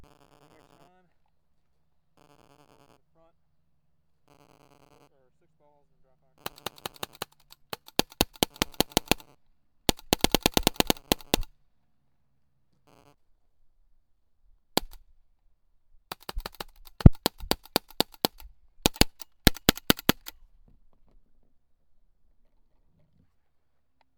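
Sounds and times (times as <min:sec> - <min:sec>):
Autococker paintball gun shots: 0:06.5 - 0:09.2, 0:09.9 - 0:11.5, 0:14.8 - 0:15.0, 0:16.1 - 0:20.4.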